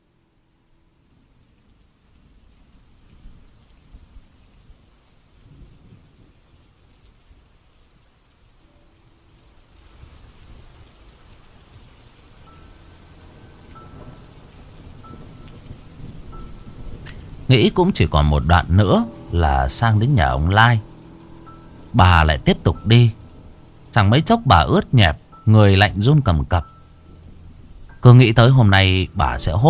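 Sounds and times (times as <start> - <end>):
heavy rain in a sudden downpour: 0.0 - 29.6
deep rolling thunder rumbles: 2.2 - 6.8, 9.8 - 24.0
speech: 17.5 - 20.9, 22.0 - 23.2, 23.9 - 26.7, 28.0 - 29.6.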